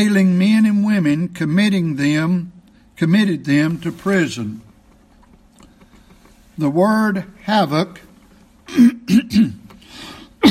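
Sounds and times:
speech: 0:00.0 - 0:04.7, 0:06.6 - 0:08.0, 0:08.7 - 0:09.6
person clearing throat harshly: 0:08.7 - 0:09.8.

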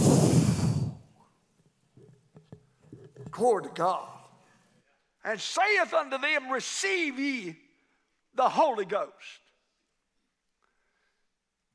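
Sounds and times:
preacher breathing out hard into a microphone during a sermon: 0:00.0 - 0:01.1
speech: 0:03.4 - 0:04.2, 0:05.2 - 0:07.6, 0:08.4 - 0:09.4.

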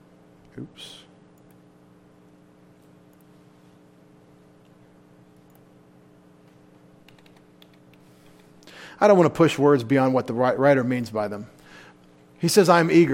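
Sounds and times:
steady low electrical hum: 0:00.0 - 0:13.1
speech: 0:00.6 - 0:01.1, 0:09.0 - 0:11.6, 0:12.4 - 0:13.1
typing on a computer keyboard: 0:07.0 - 0:08.5.

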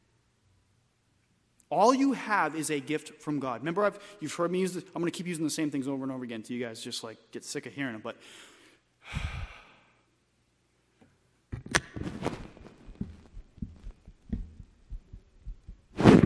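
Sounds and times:
speech: 0:01.7 - 0:09.4
breathy burst: 0:08.2 - 0:10.0
heartbeat thumping: 0:12.0 - 0:16.2.

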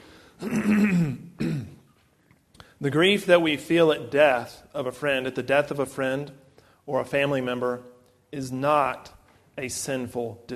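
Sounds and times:
person clearing throat: 0:00.4 - 0:01.8
speech: 0:02.8 - 0:10.5.

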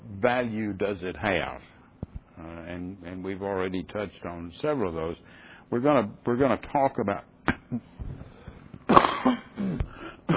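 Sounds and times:
speech: 0:00.2 - 0:01.7, 0:02.4 - 0:08.2
person coughing into a microphone: 0:08.9 - 0:10.3.

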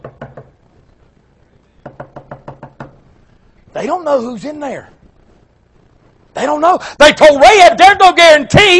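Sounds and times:
knocking on a door: 0:00.0 - 0:00.5, 0:01.8 - 0:03.0
speech: 0:03.7 - 0:05.0, 0:06.4 - 0:08.7.

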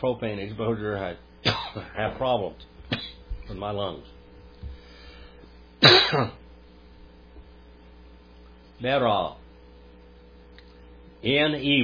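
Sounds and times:
speech: 0:00.0 - 0:04.2, 0:06.1 - 0:06.4, 0:08.8 - 0:09.4, 0:11.2 - 0:11.8
quiet room hum: 0:00.0 - 0:11.8
person coughing and clearing throat: 0:01.4 - 0:02.0, 0:02.9 - 0:03.2, 0:05.8 - 0:06.4.

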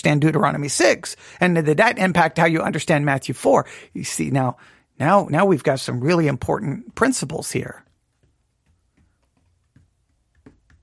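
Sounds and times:
speech: 0:00.0 - 0:07.9
tapping on a wooden desk: 0:08.2 - 0:10.8.

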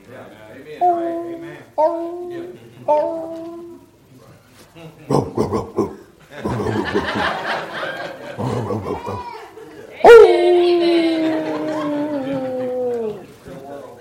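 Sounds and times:
murmuring voices: 0:00.0 - 0:14.0
dog barking and whining: 0:00.9 - 0:03.9, 0:10.0 - 0:10.9
speech: 0:01.8 - 0:03.6, 0:04.8 - 0:07.8, 0:08.4 - 0:09.4
soft laughter: 0:05.1 - 0:09.9, 0:10.8 - 0:13.3.

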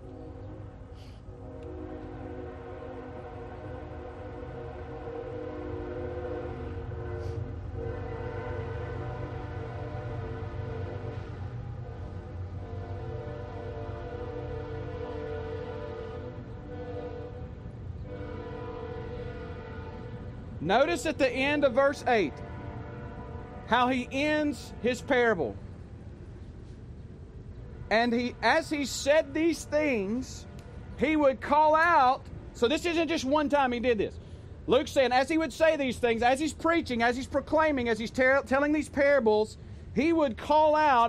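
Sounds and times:
passing train horn blaring: 0:00.0 - 0:25.8, 0:27.5 - 0:33.6
passing train low rumble: 0:00.0 - 0:41.0
speech: 0:20.7 - 0:22.5, 0:23.7 - 0:25.6, 0:27.9 - 0:41.0.

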